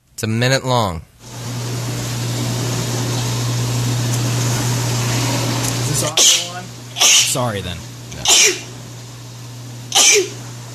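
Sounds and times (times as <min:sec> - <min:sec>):
faint steady hum: 0:00.0 - 0:10.7
speech: 0:00.2 - 0:01.1, 0:06.0 - 0:08.7, 0:10.0 - 0:10.4
woman sneezing: 0:06.2 - 0:07.4, 0:08.2 - 0:08.7, 0:09.9 - 0:10.4.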